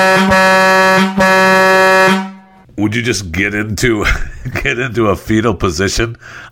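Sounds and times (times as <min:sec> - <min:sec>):
vehicle horn honking: 0:00.0 - 0:02.6
speech: 0:00.0 - 0:06.5.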